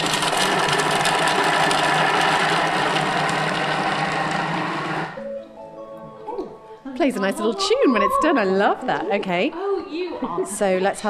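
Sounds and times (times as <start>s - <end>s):
kitchen blender at speed 5 chopping its contents: 0.0s - 5.2s
speech: 7.0s - 9.6s, 10.2s - 11.0s.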